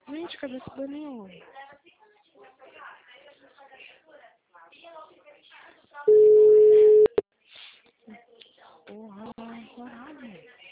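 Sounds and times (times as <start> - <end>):
speech: 0.4 - 1.7
telephone tone after a dropped call: 6.1 - 7.2.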